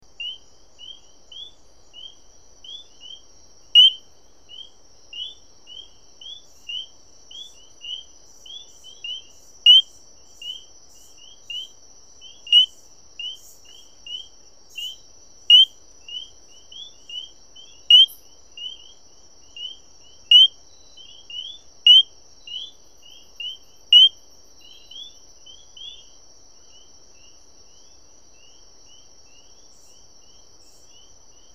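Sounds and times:
Diasporus citrinobapheus calling: 3.8s - 4.0s, 7.9s - 9.9s, 12.4s - 13.4s, 14.2s - 18.8s, 19.6s - 20.6s, 21.4s - 22.7s, 23.4s - 24.2s.

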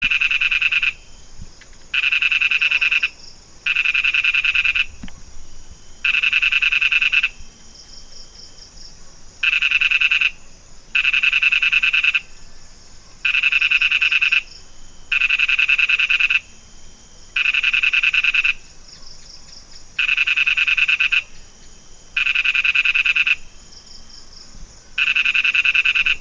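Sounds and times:
Ingerophrynus parvus calling: 0.0s - 5.2s, 6.0s - 7.4s, 9.4s - 10.4s, 11.0s - 12.3s, 13.2s - 14.5s, 15.1s - 16.5s, 17.4s - 18.6s, 20.0s - 23.5s, 25.0s - 26.2s.

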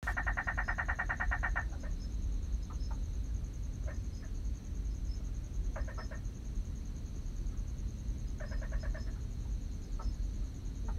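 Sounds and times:
Lesser spiny frog Quasipaa exilispinosa calling in pulsed trains: 0.0s - 10.9s
low rumbling background: 1.2s - 10.9s.

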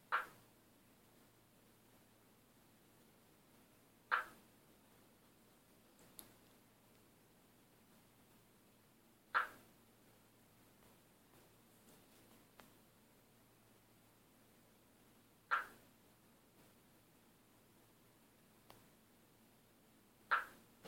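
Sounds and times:
Leptopelis uluguruensis: 0.1s - 0.5s, 4.1s - 4.5s, 9.3s - 9.7s, 15.5s - 15.9s, 20.3s - 20.7s.

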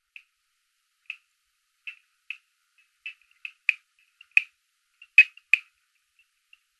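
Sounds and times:
Boophis microtympanum frog: 3.0s - 5.7s.

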